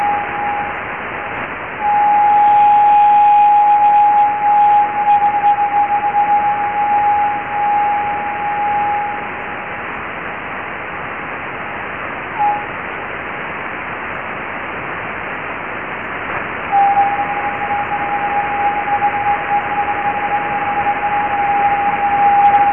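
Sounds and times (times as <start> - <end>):
thin whistling radio echo tone off Leonid meteor trails: 0.0 - 0.8, 1.8 - 9.6, 12.4 - 12.7, 16.7 - 22.7
loud hissing radio static: 0.0 - 22.7.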